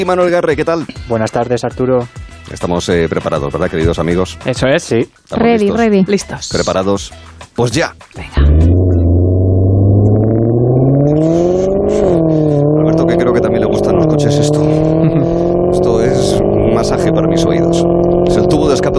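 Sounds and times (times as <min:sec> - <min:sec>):
speech: 0:00.0 - 0:08.8
Maserati sports car engine revving and accelerating through gear shifts: 0:08.4 - 0:18.9.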